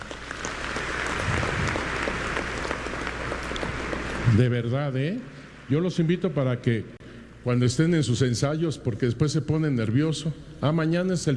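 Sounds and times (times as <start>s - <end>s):
audience applause: 0.0s - 4.4s
speech: 4.3s - 11.3s.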